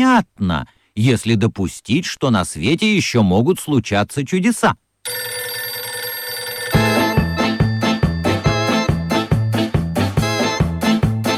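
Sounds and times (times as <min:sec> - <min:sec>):
speech: 0:00.0 - 0:05.2
telephone ringing with electronic melody: 0:05.0 - 0:10.8.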